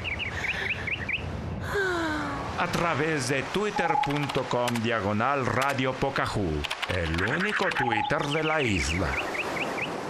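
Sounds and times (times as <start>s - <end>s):
birds trilling: 0.0s - 1.3s, 6.9s - 10.0s
speech: 2.6s - 9.4s.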